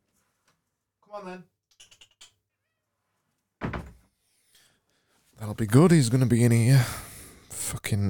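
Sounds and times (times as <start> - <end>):
speech: 1.1 - 1.6, 5.4 - 7.1, 7.8 - 8.0
thump against a door: 3.6 - 4.0.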